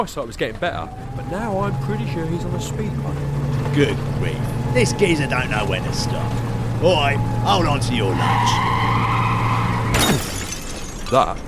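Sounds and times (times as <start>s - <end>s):
speech: 0.0s - 9.0s, 11.1s - 11.4s
steady car engine drone: 0.0s - 10.2s
loud car crash: 0.0s - 11.4s
brief scraping sweep: 0.2s - 9.9s
bright glass shattering: 9.9s - 11.4s.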